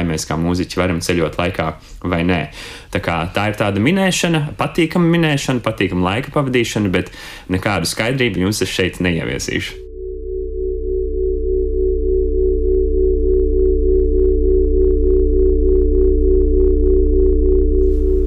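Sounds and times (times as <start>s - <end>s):
speech: 0.1s - 9.8s
deep low rumble: 9.8s - 18.2s
experimental saxophone drone of steady held tones: 9.8s - 18.2s.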